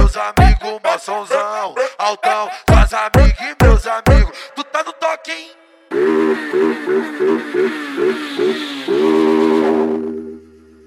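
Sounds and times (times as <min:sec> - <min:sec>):
speech: 0:00.2 - 0:10.0
motorcycle engine revving: 0:05.9 - 0:10.8.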